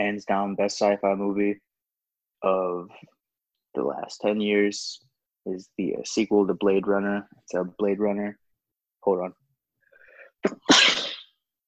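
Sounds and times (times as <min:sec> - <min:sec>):
speech: 0:00.0 - 0:01.7, 0:02.4 - 0:08.4, 0:09.0 - 0:09.4, 0:10.4 - 0:11.1
faint breath or voice: 0:09.8 - 0:10.4
loud sneeze caused by allergies: 0:10.4 - 0:11.4.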